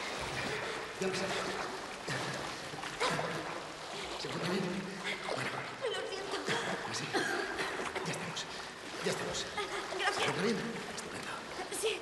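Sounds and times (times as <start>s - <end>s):
water splashing and sloshing from swimming in a pool: 0.0s - 12.0s.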